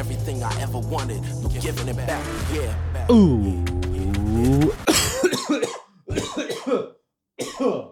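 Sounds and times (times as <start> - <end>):
speech: 0.4 - 3.8
person singing a sustained note: 3.0 - 4.9
person coughing after choking: 3.1 - 7.8.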